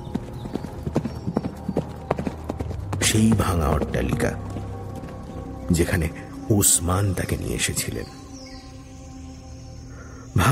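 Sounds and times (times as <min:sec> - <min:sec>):
horse hooves clip-clopping, lone rider on horseback: 0:00.0 - 0:06.0
speech: 0:03.1 - 0:04.5, 0:05.7 - 0:08.2.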